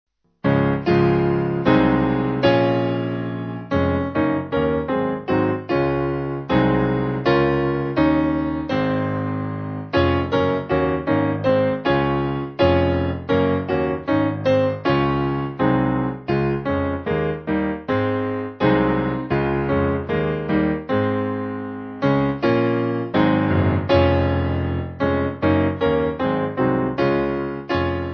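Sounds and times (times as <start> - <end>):
piano piece: 0.4 - 28.1.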